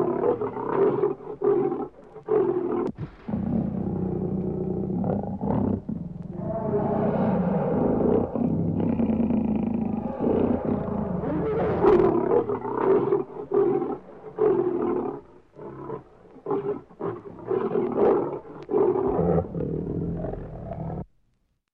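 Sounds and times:
lion roaring and growling: 0.0s - 21.1s.

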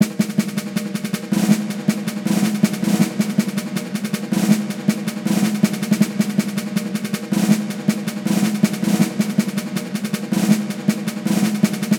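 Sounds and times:
snare drum rolls: 0.0s - 11.9s.

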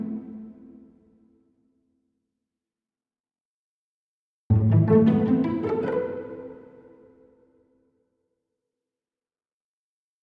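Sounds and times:
cello pizzicato: 0.0s - 0.8s, 4.5s - 7.2s.

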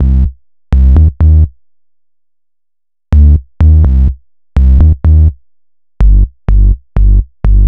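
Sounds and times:
corrosive bass: 0.0s - 1.5s, 3.1s - 5.4s, 6.0s - 7.6s.

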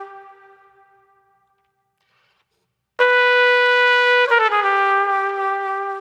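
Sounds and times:
smooth brass trumpet: 0.0s - 1.8s, 3.0s - 5.9s.

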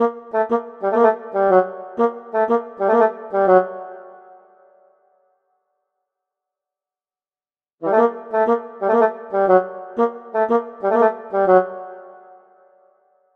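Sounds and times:
oboe: 0.0s - 4.3s, 7.8s - 12.6s.

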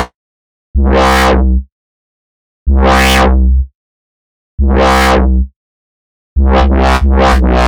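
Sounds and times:
jelly bass synthesizer: 0.8s - 1.6s, 2.7s - 3.7s, 4.6s - 5.5s, 6.4s - 7.6s.

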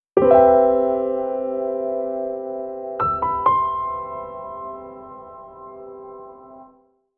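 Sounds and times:
Latin bossa piano: 0.2s - 6.7s.

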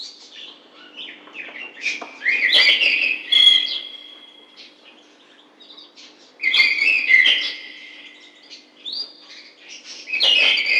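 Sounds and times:
bird singing whistled phrase: 1.8s - 4.4s, 6.4s - 9.0s, 10.1s - 10.7s.

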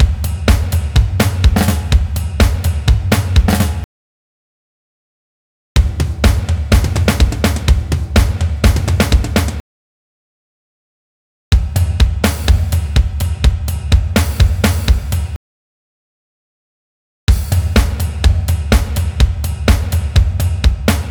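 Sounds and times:
indie rock drum loop at 125 BPM: 0.0s - 3.8s, 5.8s - 9.6s, 11.6s - 15.4s, 17.3s - 21.1s.

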